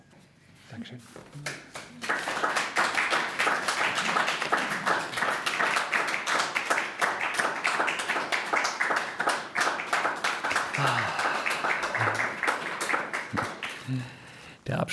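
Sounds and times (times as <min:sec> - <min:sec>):
speech: 0:00.7 - 0:02.3
live audience applause: 0:01.4 - 0:14.4.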